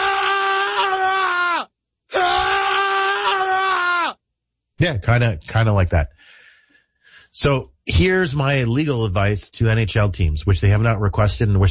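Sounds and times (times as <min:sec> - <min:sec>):
person screaming in frustration: 0:00.0 - 0:04.2
speech: 0:04.8 - 0:06.3, 0:07.4 - 0:11.6.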